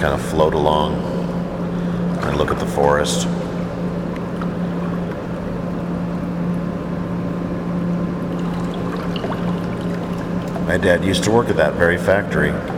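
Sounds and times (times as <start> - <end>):
speech: 0.0 - 1.2, 2.2 - 3.5, 10.7 - 12.7
generator humming in the distance: 0.0 - 12.7
soft continuous water wash: 8.2 - 11.6.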